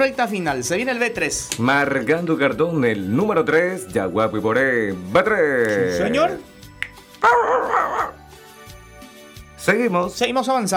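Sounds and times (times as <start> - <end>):
speech: 0.0 - 6.5, 7.2 - 8.2, 9.6 - 10.7
dog barking: 7.2 - 8.2.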